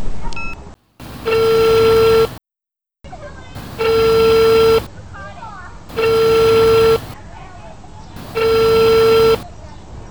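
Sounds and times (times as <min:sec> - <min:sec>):
sustained steady telephone tone: 0:01.0 - 0:02.4, 0:03.6 - 0:04.9, 0:05.9 - 0:07.2, 0:08.2 - 0:09.4
telephone keypad beeps dialing an emergency ambulance number in Pernambuco, Brazil: 0:01.0 - 0:02.4, 0:03.6 - 0:04.9, 0:05.9 - 0:07.2, 0:08.2 - 0:09.4.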